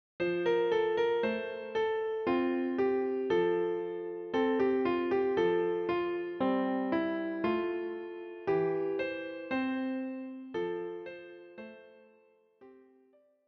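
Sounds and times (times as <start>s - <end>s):
easy Christmas song on piano: 0.2s - 13.4s.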